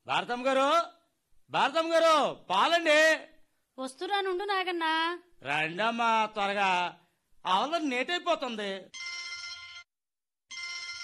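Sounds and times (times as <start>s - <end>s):
speech: 0.1s - 9.0s
telephone ringing: 8.9s - 11.0s.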